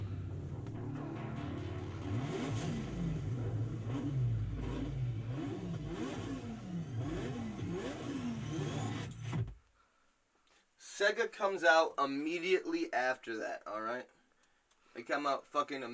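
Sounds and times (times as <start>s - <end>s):
car engines revving in a teaser video: 0.0s - 9.6s
speech: 11.0s - 14.2s, 15.0s - 15.9s.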